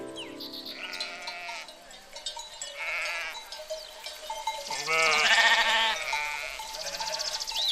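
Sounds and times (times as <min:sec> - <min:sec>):
goats bleating on a hot day: 0:00.7 - 0:01.8, 0:02.6 - 0:03.6, 0:04.7 - 0:07.5.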